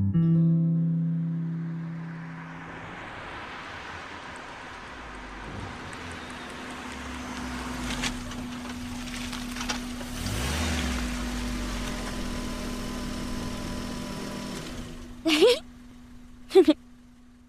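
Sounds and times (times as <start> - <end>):
borrowed car engine humming as it drives up: 0.9 - 17.4.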